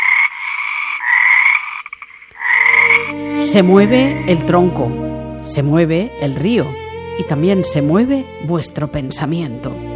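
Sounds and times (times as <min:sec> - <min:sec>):
frog croaking: 0:00.0 - 0:04.4
speech: 0:03.1 - 0:09.9.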